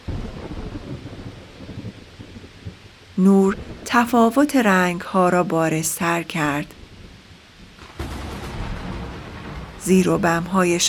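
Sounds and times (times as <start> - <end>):
deep rolling thunder at the start of a storm: 0.0 - 3.9, 6.8 - 9.9
faint rain: 0.0 - 10.8
speech: 3.2 - 6.8, 9.9 - 10.8.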